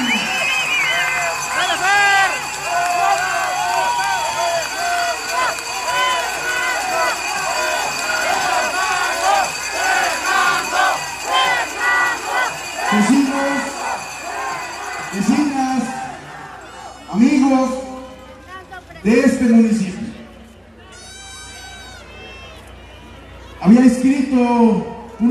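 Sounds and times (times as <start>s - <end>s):
large audience cheering and shouting: 0.0s - 20.1s, 20.7s - 25.2s
audience clapping: 0.7s - 10.8s.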